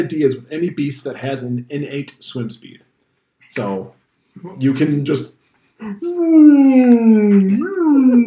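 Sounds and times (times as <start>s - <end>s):
speech: 0.0s - 2.9s, 3.5s - 8.2s
person imitating whale song with moaning tone: 5.8s - 8.2s.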